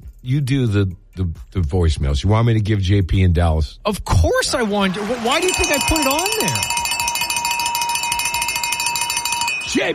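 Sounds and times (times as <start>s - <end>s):
speech: 0.2s - 6.8s, 9.7s - 9.9s
cowbell rung for a birthday: 5.4s - 9.9s.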